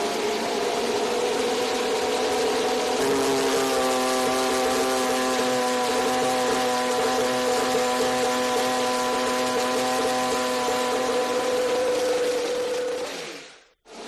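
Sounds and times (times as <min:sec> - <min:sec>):
Mercedes Formula One engine starting up: 0:00.2 - 0:13.5.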